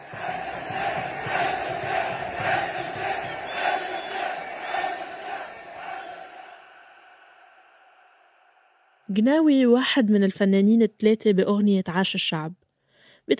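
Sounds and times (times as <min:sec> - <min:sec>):
large crowd in Moroccan stadiums chanting a protest slogan in unison: 0:00.0 - 0:09.0
speech: 0:09.2 - 0:12.6.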